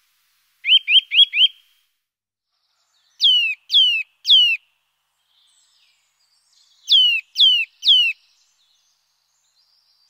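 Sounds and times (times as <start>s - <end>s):
Eurasian nuthatch giving loud clear descending piping whistles: 0.6s - 1.6s, 3.0s - 4.6s, 6.7s - 8.4s.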